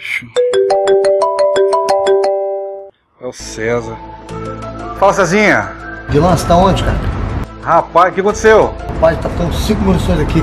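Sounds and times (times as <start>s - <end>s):
speech: 0.2s - 0.4s, 3.3s - 10.4s
telephone electronic ringtone of beeps over sustained tones: 0.4s - 2.9s.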